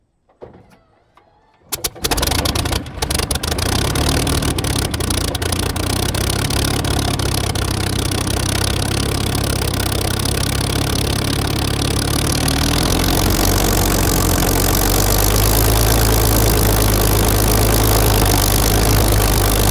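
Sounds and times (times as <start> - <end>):
1944 Supermarine Spitfire Mk-VIII aircraft engine startup: 0.6 - 19.6.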